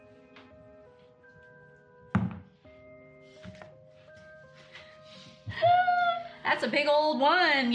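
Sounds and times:
quarterstaff knocking on a large loud door in a cave: 2.2 - 2.5
speech: 6.6 - 7.7.

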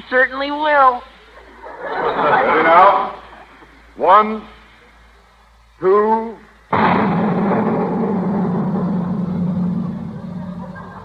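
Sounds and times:
speech: 0.1 - 1.1, 1.8 - 3.2, 4.0 - 4.6, 5.8 - 7.2
laughter: 1.2 - 3.9, 10.0 - 11.0
cannon firing a giant firecracker blast: 6.7 - 11.0
rumbling roar after cannon blast: 6.7 - 11.0.

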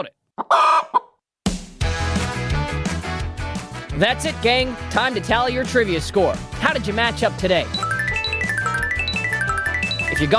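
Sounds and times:
speech: 0.0 - 0.9, 4.0 - 7.9, 10.2 - 10.3
chicken clucking: 0.4 - 1.2
upbeat music: 1.9 - 10.3.

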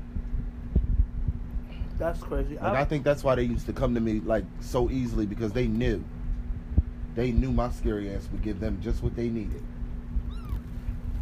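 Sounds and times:
steady low hum and rumbling noise: 0.0 - 11.1
speech: 2.0 - 6.2, 7.2 - 9.7
male pet cat meowing: 10.2 - 11.0.

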